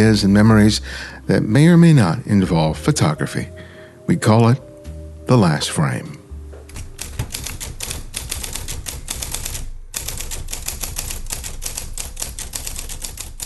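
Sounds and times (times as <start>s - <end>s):
speech: 0.0s - 4.7s, 5.3s - 6.2s
mustard yellow Sears Selectric 1 electric typewriter typing: 6.7s - 13.4s.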